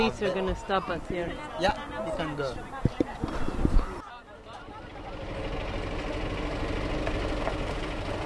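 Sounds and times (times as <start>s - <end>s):
speech: 0.0s - 3.5s
outdoor noise: 0.0s - 8.2s
bus engine idling at the gate of a migrant camp in Hungary: 4.3s - 8.2s.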